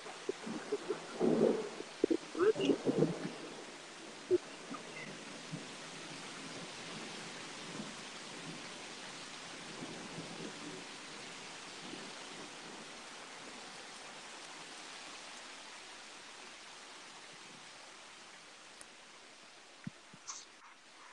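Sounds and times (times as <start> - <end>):
faint rumble of thunder: 0.0 - 21.1
steady dense rain hissing: 0.0 - 21.1.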